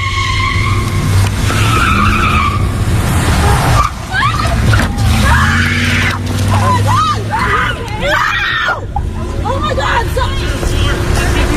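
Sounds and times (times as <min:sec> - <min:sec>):
people screaming: 0:00.0 - 0:10.0
speeding truck engine roaring: 0:00.0 - 0:11.5
speeding truck tire noise: 0:00.0 - 0:11.5
traffic rumble: 0:00.0 - 0:11.5
people shouting in panic: 0:03.4 - 0:10.2.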